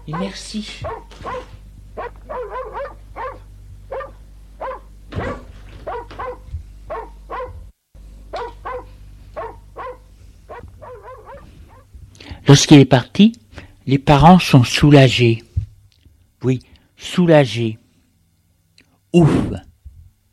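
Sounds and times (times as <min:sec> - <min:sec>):
happy dog barking excitedly: 0:00.0 - 0:07.7, 0:08.3 - 0:11.9
speech: 0:00.1 - 0:01.6, 0:12.5 - 0:15.4, 0:16.4 - 0:17.8, 0:19.1 - 0:19.6.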